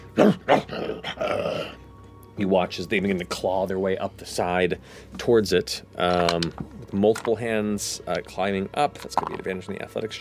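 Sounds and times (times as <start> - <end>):
speech: 0.2 - 1.2, 2.4 - 10.2
voice imitating a creature's growl: 0.2 - 1.8.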